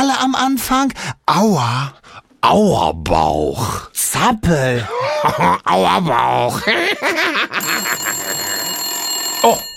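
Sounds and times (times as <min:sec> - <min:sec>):
speech: 0:00.2 - 0:08.1, 0:09.4 - 0:09.7
laughter: 0:04.9 - 0:08.7
telephone ringing with shrill bell trill: 0:07.5 - 0:09.7.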